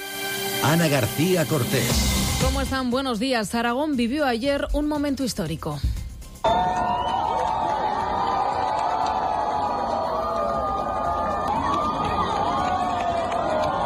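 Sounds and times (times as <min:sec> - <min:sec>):
speech: 0:00.6 - 0:06.9
large outdoor crowd shouting and cheering during eclipse: 0:06.4 - 0:13.8
whoops: 0:06.5 - 0:13.8.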